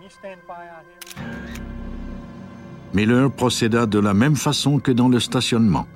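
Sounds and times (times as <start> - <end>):
speech: 0.1 - 1.6, 2.9 - 5.9
camera shutter clicks photographing a crime scene: 1.0 - 1.7.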